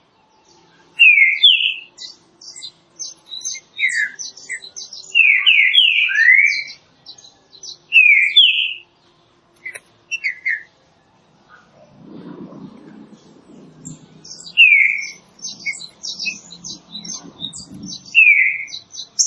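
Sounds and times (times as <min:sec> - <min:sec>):
green-winged saltator singing loud whistled phrases: 0:01.0 - 0:06.8, 0:07.6 - 0:08.8, 0:09.6 - 0:10.7, 0:14.2 - 0:19.2
low rumble: 0:11.7 - 0:14.6.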